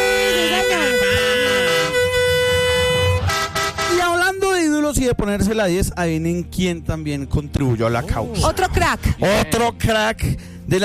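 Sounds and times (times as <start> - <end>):
truck horn honking on a city street: 0.0 - 4.6
speech: 5.1 - 10.8.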